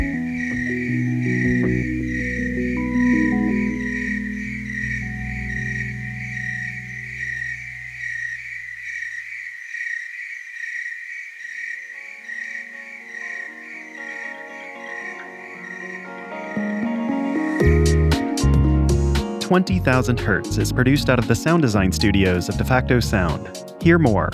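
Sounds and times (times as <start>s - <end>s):
low musical chords: 0.0s - 8.8s, 13.4s - 24.3s
tree crickets singing at night: 0.0s - 17.6s
speech: 19.5s - 24.3s.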